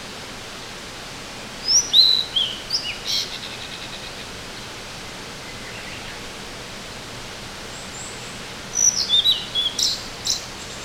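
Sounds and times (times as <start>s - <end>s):
faint steady hiss: 0.0s - 10.8s
bird calls with high-pitched chirps and slurred notes: 8.8s - 10.4s.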